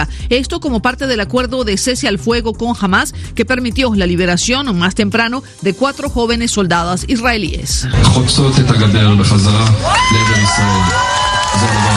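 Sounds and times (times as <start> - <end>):
speech: 0.0 - 11.9
large crowd in Tel Aviv cheering: 8.7 - 11.9
crowd in Tel Aviv clapping: 9.2 - 11.9
people in a crowd in Tel Aviv shouting and whooping: 9.6 - 11.9.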